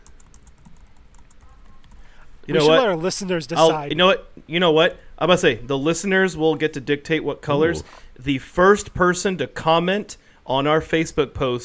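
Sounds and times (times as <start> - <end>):
rapid typing on a computer keyboard: 0.0 - 2.0
speech: 2.4 - 11.6.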